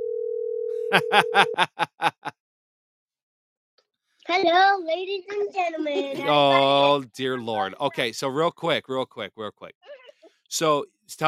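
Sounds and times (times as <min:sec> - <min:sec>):
outgoing phone call ringing tone: 0:00.0 - 0:01.6
speech: 0:00.9 - 0:02.2, 0:04.3 - 0:11.2
short rhythmic laugh-like bursts: 0:00.9 - 0:02.3, 0:06.2 - 0:08.0.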